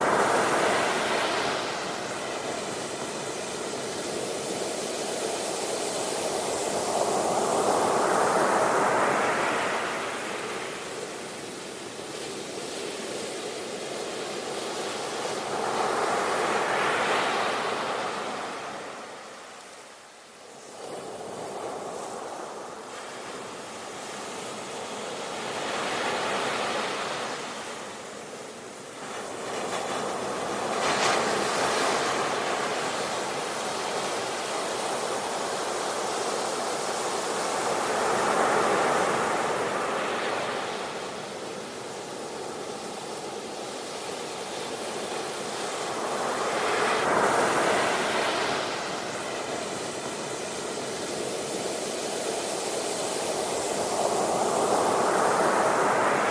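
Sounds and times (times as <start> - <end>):
ocean waves: 0.0 - 56.2.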